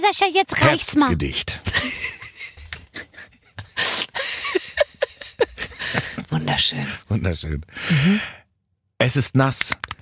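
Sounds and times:
speech: 0.1s - 2.0s, 6.4s - 8.4s, 9.0s - 9.8s
laughter: 0.6s - 8.3s
person blowing breathily into microphone imitating wind: 7.8s - 8.4s.

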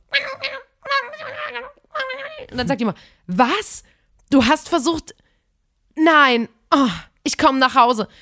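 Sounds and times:
person imitating garbled tinny telephone voice of a husband: 0.0s - 2.8s
speech: 2.5s - 5.2s, 6.0s - 8.2s.

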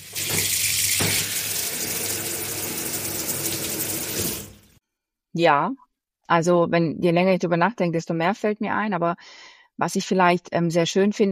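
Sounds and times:
shower water running in a dense hissing rush: 0.0s - 4.8s
speech: 5.4s - 11.3s.

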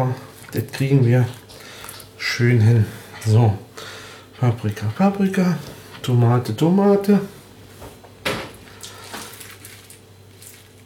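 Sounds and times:
speech: 0.0s - 1.4s, 2.2s - 7.4s
low steady hum: 0.0s - 10.8s
door opening with thump: 8.2s - 8.6s.

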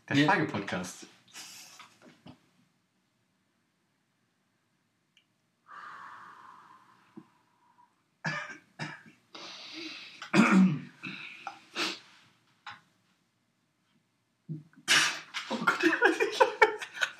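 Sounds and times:
speech: 0.1s - 1.5s
person gasping after choking on a hot drink: 5.7s - 7.8s, 9.4s - 10.3s
person spluttering and coughing after choking on a hot drink: 8.3s - 9.1s, 10.2s - 11.2s
laughter: 15.4s - 17.1s.

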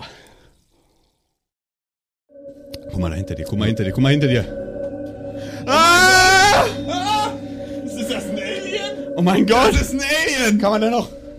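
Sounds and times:
water poured into a glass: 0.3s - 1.5s
brief loud humming tone: 2.3s - 11.3s
speech: 3.0s - 4.6s, 9.2s - 11.2s.

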